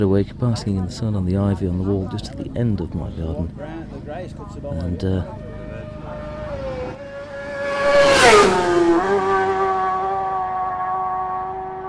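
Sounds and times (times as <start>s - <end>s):
speech: 0.0s - 5.4s
bikes passing by a garden wall: 4.1s - 11.8s.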